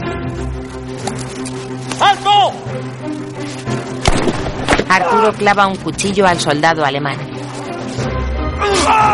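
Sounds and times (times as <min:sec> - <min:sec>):
droning musical background: 0:00.0 - 0:09.1
speech: 0:00.1 - 0:03.6, 0:04.9 - 0:07.4, 0:08.8 - 0:09.1
gunshot fired by a suspect in the snow: 0:04.0 - 0:04.9.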